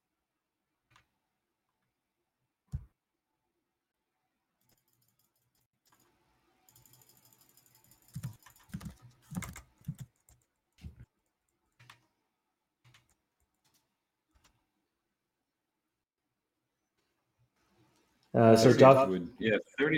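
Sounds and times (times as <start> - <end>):
typing on a computer keyboard: 6.7 - 12.1, 12.8 - 14.6
speech: 18.4 - 19.9.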